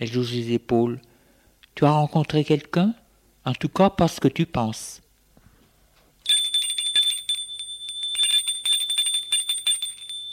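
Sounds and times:
speech: 0.0s - 1.1s, 1.8s - 5.0s
bell rung rapidly to call people to dinner: 6.3s - 10.3s.

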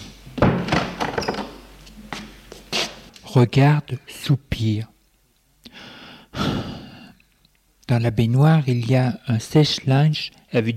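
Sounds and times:
bathroom door pushed shut with latch rattle: 0.4s - 1.6s
speech: 3.3s - 4.9s, 7.9s - 10.7s.

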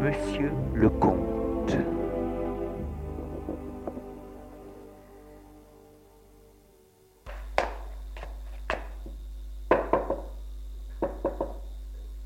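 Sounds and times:
speech: 0.0s - 2.0s
steady low hum: 0.0s - 12.2s
servant knocking on a study door: 3.1s - 4.1s, 9.7s - 10.3s, 11.0s - 11.6s.

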